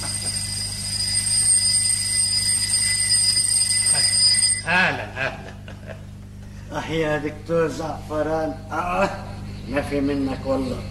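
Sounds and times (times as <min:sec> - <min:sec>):
alarm clock ringing: 0:00.0 - 0:05.0
laughter: 0:04.7 - 0:06.1
speech: 0:06.9 - 0:10.8.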